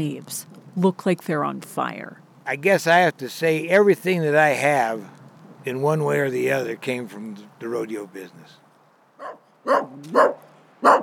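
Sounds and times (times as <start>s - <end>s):
speech: 0.0s - 8.6s, 9.2s - 11.0s
tiny dog barking sharp yappy barks: 9.2s - 11.0s.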